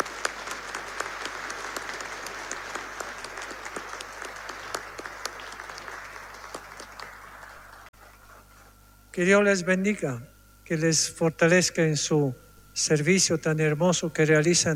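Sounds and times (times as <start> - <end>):
audience applauding: 0.0 - 7.9
speech: 9.2 - 14.7.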